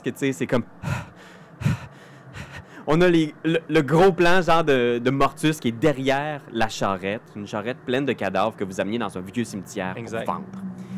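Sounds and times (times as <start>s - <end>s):
speech: 0.0s - 1.1s, 2.9s - 10.7s
heavy ragged panting with breathy gasps: 0.8s - 2.9s.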